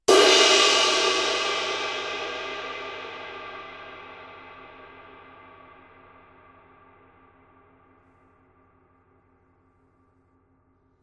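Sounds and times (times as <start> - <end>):
22 inch dark crash ride cymbal struck on the edge: 0.1 - 7.1.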